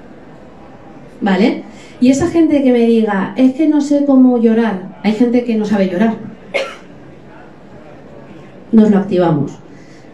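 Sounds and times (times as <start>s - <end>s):
speech: 1.2s - 6.6s, 8.7s - 9.7s
person coughing deliberately: 6.5s - 6.9s.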